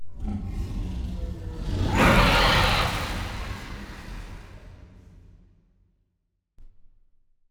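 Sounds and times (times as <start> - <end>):
aquatic dragon dying: 1.6 - 4.8.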